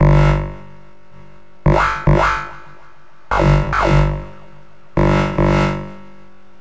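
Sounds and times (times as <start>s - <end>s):
dubstep flapper bass loops: 1.7s - 6.0s.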